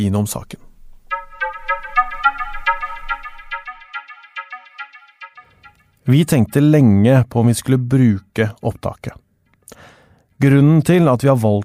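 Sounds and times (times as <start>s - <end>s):
speech: 0.0s - 0.6s, 6.1s - 11.6s
outgoing phone call ringing tone as a bright electronic melody: 1.1s - 6.5s.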